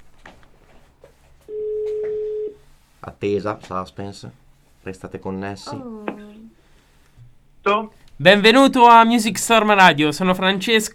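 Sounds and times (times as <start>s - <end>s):
faint low noise: 0.0s - 10.9s
ringback tone on an outgoing phone call: 1.5s - 2.6s
speech: 3.2s - 6.1s, 8.2s - 10.9s.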